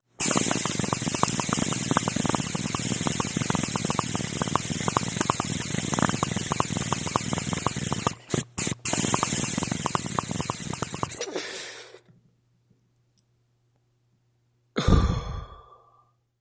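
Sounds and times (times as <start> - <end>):
hookah bubbling: 0.0 - 12.0.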